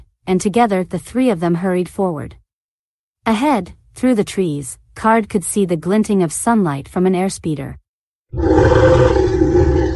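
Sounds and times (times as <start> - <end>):
speech: 0.3 - 2.4, 3.2 - 9.6
chorus of alien creature roars: 8.3 - 9.9.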